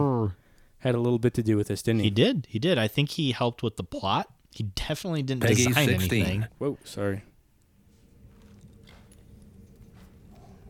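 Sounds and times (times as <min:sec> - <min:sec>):
speech: 0:00.3 - 0:07.3
horse hooves clip-clopping at a walking pace: 0:08.2 - 0:10.6.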